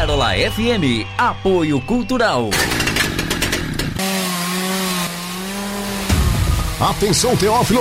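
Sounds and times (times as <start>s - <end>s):
speech: 0.1s - 2.8s, 4.0s - 4.2s, 6.8s - 7.7s
chainsaw cutting wood: 2.5s - 7.7s.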